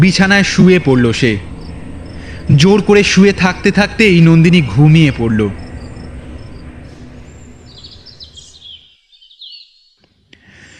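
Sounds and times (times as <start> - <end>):
speech: 0.0 - 1.5, 2.5 - 5.6
steady hiss: 0.0 - 8.2
morning birdsong with chirps and trills: 0.0 - 10.3.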